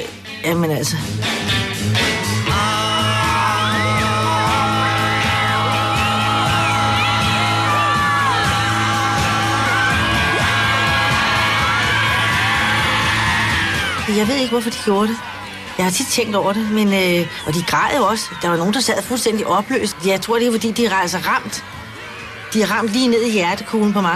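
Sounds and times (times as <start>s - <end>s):
speech: 0.4s - 2.8s, 14.1s - 21.7s, 22.5s - 24.1s
large crowd of fans screaming and yelling: 2.0s - 24.1s.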